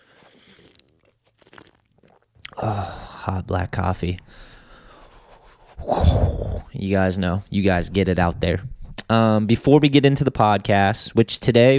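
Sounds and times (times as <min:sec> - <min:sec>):
crunchy chewing: 0:00.0 - 0:02.6
speech: 0:02.6 - 0:04.5, 0:06.8 - 0:11.7.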